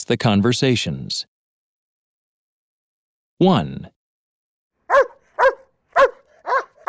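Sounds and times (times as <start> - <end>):
speech: 0.1 - 1.3, 3.4 - 4.0
dog barking: 4.9 - 6.8.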